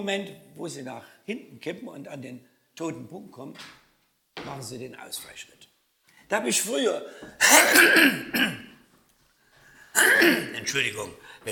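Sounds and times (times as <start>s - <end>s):
speech: 0.0s - 3.8s, 4.4s - 5.6s, 6.3s - 8.7s, 10.0s - 11.5s
throat clearing from a froggy hoarse throat: 7.4s - 8.8s, 10.0s - 10.6s.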